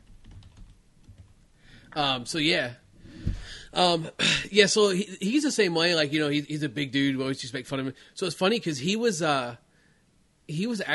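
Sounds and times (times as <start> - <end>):
typing on a computer keyboard: 0.0 - 1.4
speech: 1.9 - 2.8, 3.7 - 9.6, 10.5 - 10.9.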